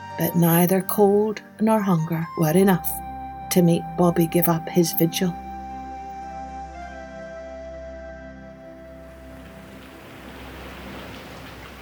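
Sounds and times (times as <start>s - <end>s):
speech: 0.2s - 5.4s
whipping wind: 8.6s - 11.8s
rain pelting down at night: 8.7s - 11.8s.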